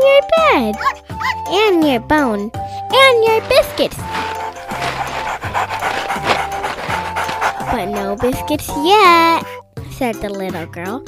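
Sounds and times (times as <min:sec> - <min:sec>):
speech: 0:00.6 - 0:06.3, 0:07.7 - 0:11.0
small yellow puppy panting: 0:02.9 - 0:09.2.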